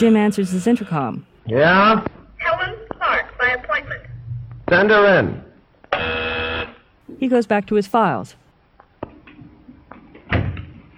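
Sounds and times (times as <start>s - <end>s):
speech: 0.0s - 2.2s, 4.7s - 6.3s, 7.2s - 8.4s
door closing with a muffled thud: 10.2s - 10.8s.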